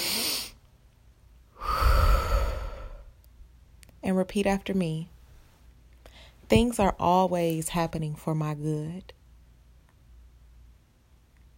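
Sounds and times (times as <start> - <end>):
deep breath in through the nose: 1.6 - 3.1
exhale pushed out through the mouth: 1.6 - 3.1
speech: 4.2 - 5.1, 6.5 - 9.2.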